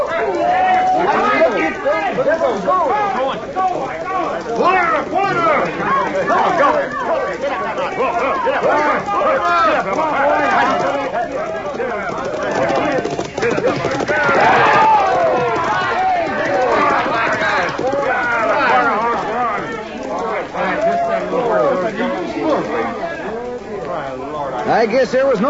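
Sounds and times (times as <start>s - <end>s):
hoofbeats of horses galloping in a race: 0.0s - 24.1s
excited crowd cheering and shouting: 0.0s - 25.4s
speech: 24.8s - 25.4s.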